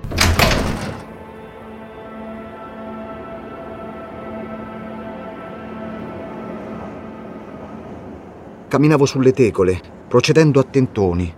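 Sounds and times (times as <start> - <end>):
attic door to a roof opening with clunk and rattle: 0.0 - 1.1
low ambient hum: 0.1 - 11.3
speech: 8.7 - 11.3.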